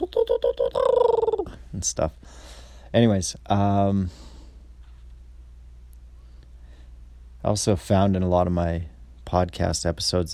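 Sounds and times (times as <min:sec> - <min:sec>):
person imitating winter wren song: 0:00.0 - 0:01.9
speech: 0:00.2 - 0:01.1, 0:01.7 - 0:04.3, 0:07.4 - 0:10.3.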